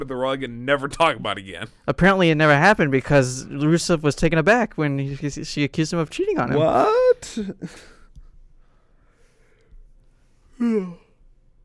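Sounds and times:
speech: 0:00.0 - 0:08.0, 0:10.6 - 0:11.0
person yawning with a voiced falling groan: 0:06.6 - 0:07.9, 0:10.6 - 0:11.2
soft breathing: 0:07.6 - 0:11.2.

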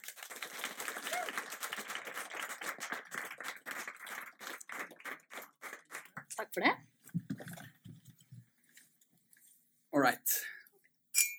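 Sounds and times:
small crowd applauding in a room: 0:00.0 - 0:06.3
speech: 0:06.4 - 0:06.9, 0:10.0 - 0:10.4.

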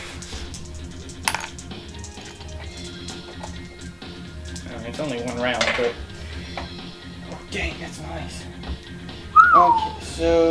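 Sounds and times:
dice rolled for attack damage in a game clattering onto a hard tabletop: 0:01.2 - 0:01.6
speech: 0:04.8 - 0:06.1, 0:07.5 - 0:08.5, 0:09.5 - 0:10.4.

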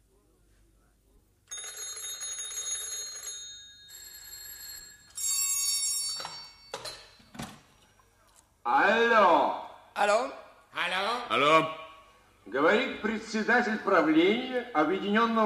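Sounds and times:
telephones ringing with rattling electric bells: 0:01.5 - 0:07.2
speech: 0:08.7 - 0:10.4, 0:12.6 - 0:15.4.

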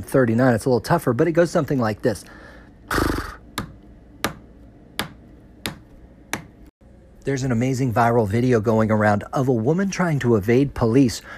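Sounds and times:
speech: 0:00.1 - 0:03.2, 0:07.2 - 0:11.3
human voice imitating a breathy horse whinny: 0:02.9 - 0:03.4.

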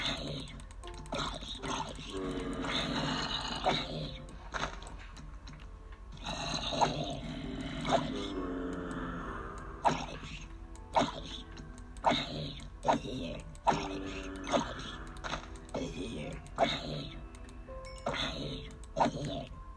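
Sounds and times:
raspy video game zombie groans: 0:00.0 - 0:04.4, 0:06.2 - 0:17.2
clicks: 0:00.0 - 0:06.1, 0:07.0 - 0:19.5.

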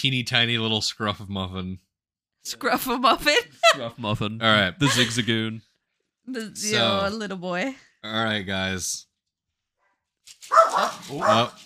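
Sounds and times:
speech: 0:00.0 - 0:05.7, 0:06.3 - 0:09.1, 0:10.3 - 0:11.6
laughter: 0:03.3 - 0:05.6, 0:06.6 - 0:07.1
dog barking outdoors: 0:10.5 - 0:11.6.

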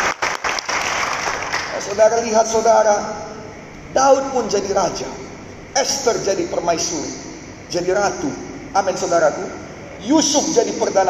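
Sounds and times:
congregation clapping in dense sustained applause: 0:00.0 - 0:02.0
speech: 0:01.8 - 0:05.2, 0:05.8 - 0:11.0.

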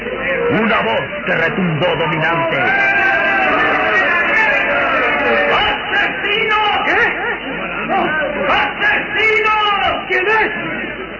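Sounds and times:
speech: 0:00.6 - 0:02.9
dense crowd shouting and clamoring: 0:02.2 - 0:11.0.

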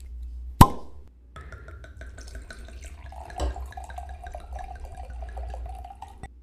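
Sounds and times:
wine bottle cork popping: 0:00.6 - 0:06.3
wine pouring into a glass: 0:01.4 - 0:06.3.

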